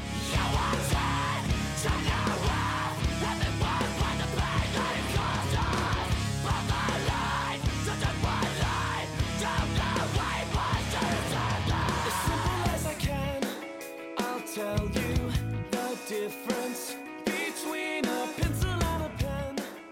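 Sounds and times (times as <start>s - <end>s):
harsh abrasive screamed vocals in a heavy song: 0.0s - 13.0s
dense wall of distorted guitars in a heavy song: 0.0s - 19.9s
drums in a heavy song: 0.0s - 19.9s.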